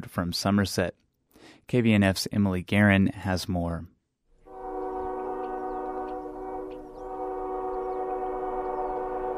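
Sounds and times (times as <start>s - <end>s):
speech: 0.1s - 1.0s, 1.6s - 3.9s
coal train horn blaring: 4.4s - 9.3s
faint birds chirping: 4.5s - 9.3s.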